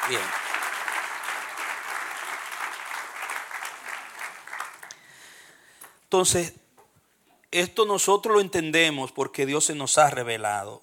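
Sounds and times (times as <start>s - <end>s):
audience applause: 0.0s - 5.4s
speech: 0.1s - 0.4s, 6.1s - 6.6s, 7.5s - 10.8s.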